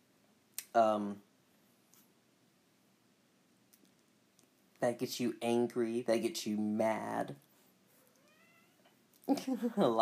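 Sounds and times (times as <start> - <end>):
soft room hiss: 0.0 - 10.0
speech: 0.8 - 1.3, 4.8 - 7.5, 9.3 - 10.0
cat meowing: 8.1 - 8.9.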